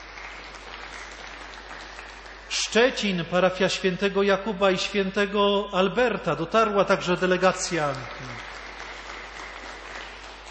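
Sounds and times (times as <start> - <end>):
crowd applauding parish delegations at a church gathering: 0.0 - 3.2, 7.3 - 10.4
speech: 2.7 - 8.4.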